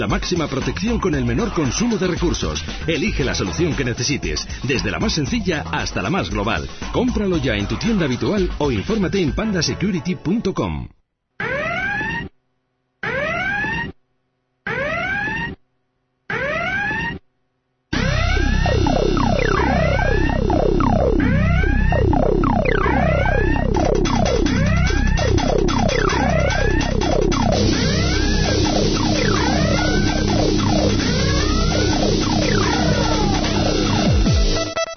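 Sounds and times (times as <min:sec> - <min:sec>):
speech: 0:00.0 - 0:11.0
short siren blasts: 0:11.4 - 0:12.3, 0:13.0 - 0:14.0, 0:14.7 - 0:15.6, 0:16.3 - 0:17.2, 0:18.0 - 0:34.8
several wailing sirens sweeping up and down: 0:18.0 - 0:34.7.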